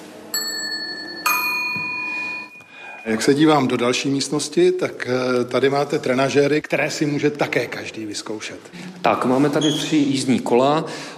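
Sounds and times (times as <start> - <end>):
ding-dong doorbell chime: 0.3 - 3.2
speech: 3.1 - 11.1.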